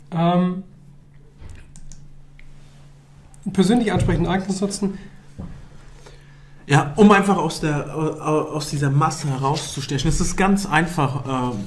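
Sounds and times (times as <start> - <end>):
low steady hum: 0.0 - 11.6
soft keyboard clicks advancing to the next presentation slide: 1.5 - 2.5
speech: 3.5 - 5.2, 6.7 - 11.6.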